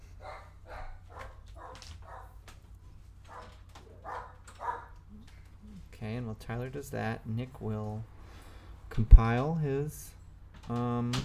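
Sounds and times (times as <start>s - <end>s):
low constant hum: 0.0s - 11.2s
dog barking: 0.2s - 2.4s, 3.3s - 5.0s
speech: 6.1s - 8.2s, 9.0s - 11.2s.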